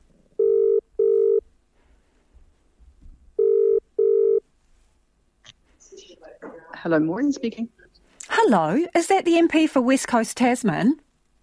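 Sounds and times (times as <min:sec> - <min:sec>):
telephone ringback tone as a call is dialled: 0:00.4 - 0:01.4, 0:03.4 - 0:04.4
speech: 0:06.8 - 0:07.8, 0:08.5 - 0:11.0.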